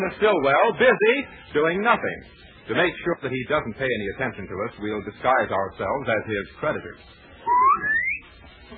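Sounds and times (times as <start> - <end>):
speech: 0.0 - 8.0
person whistling a short rising tune: 7.4 - 8.2.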